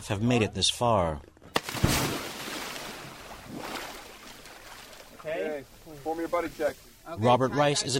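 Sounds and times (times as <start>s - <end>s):
speech: 0.0s - 1.3s, 5.6s - 7.9s
wind on the open ocean: 0.0s - 7.9s
sharp splash: 1.6s - 5.2s
water noise on the open ocean from a small dive boat off Cambodia's coast: 1.6s - 7.3s.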